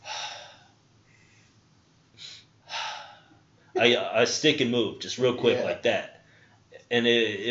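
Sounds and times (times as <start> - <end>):
person's breathy exhale: 0.0 - 1.6, 2.2 - 3.4
speech: 3.8 - 6.2, 6.9 - 7.4.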